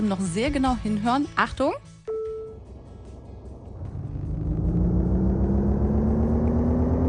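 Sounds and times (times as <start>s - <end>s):
speech: 0.0s - 1.9s
electric car artificial pedestrian warning hum: 2.1s - 7.0s.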